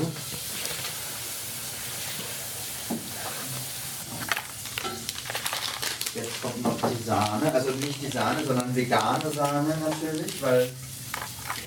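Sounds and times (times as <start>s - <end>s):
butter sizzling in hot golden caramel for Christmas cookies: 0.0s - 11.6s
speech: 7.1s - 10.8s.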